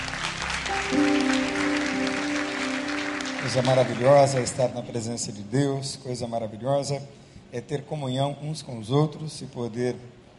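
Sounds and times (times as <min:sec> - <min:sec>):
crowd applauding: 0:00.0 - 0:05.1
speech: 0:03.5 - 0:10.2.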